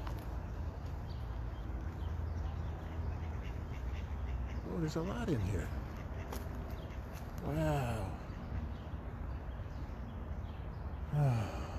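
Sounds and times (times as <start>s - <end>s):
steady outdoor noise: 0.0s - 11.7s
mallard duck quacking: 3.1s - 7.1s
speech: 4.8s - 5.9s, 7.4s - 8.1s.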